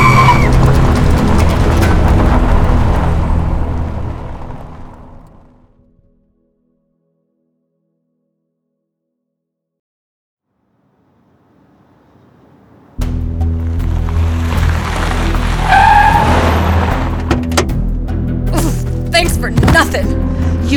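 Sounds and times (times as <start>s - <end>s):
car tires squealing: 0.0s - 5.4s, 11.0s - 17.9s
car engine roaring: 0.0s - 5.8s, 10.8s - 20.7s.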